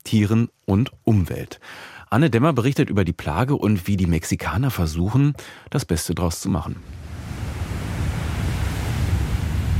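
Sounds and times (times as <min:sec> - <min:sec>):
speech: 0:00.0 - 0:07.2
gentle surf breaking on a Caribbean beach on the Gulf of Mexico: 0:06.8 - 0:09.7
wind buffeting the microphone: 0:06.8 - 0:09.7.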